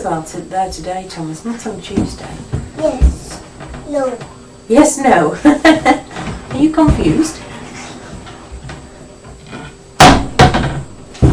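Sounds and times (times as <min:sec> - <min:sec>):
speech: 0:00.0 - 0:06.0, 0:06.6 - 0:07.4
wooden doors slamming shut: 0:10.0 - 0:11.3.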